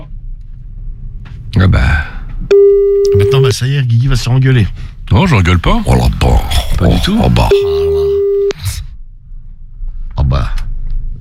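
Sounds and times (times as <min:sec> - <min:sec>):
speech: 0:01.6 - 0:02.0, 0:03.5 - 0:08.1
telephone line ringing tone during call: 0:02.5 - 0:03.5, 0:07.5 - 0:08.6.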